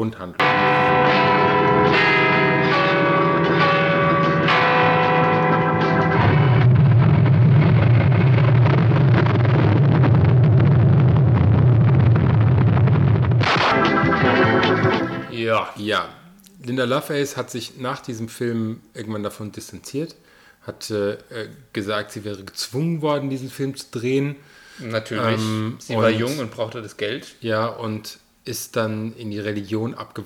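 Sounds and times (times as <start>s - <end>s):
speech: 0.0s - 1.2s, 15.6s - 30.2s
church bells ringing in overlapping peals: 0.4s - 6.9s, 13.5s - 15.3s
rumbling barrage of fireworks booming: 0.4s - 15.0s.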